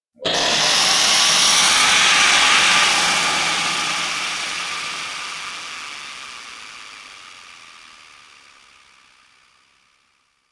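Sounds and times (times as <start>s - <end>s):
shrill screams: 0.2s - 5.2s.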